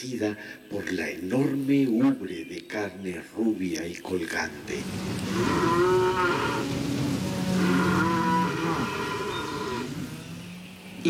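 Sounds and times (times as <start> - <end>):
speech: 0.0 - 6.9
faint steady hiss: 0.0 - 11.0
cow mooing: 4.7 - 10.4.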